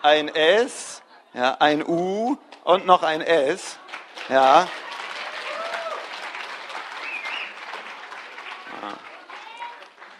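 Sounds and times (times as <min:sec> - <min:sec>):
speech: 0:00.0 - 0:04.8, 0:08.8 - 0:09.1
audience applause with many hands clapping: 0:03.7 - 0:10.1.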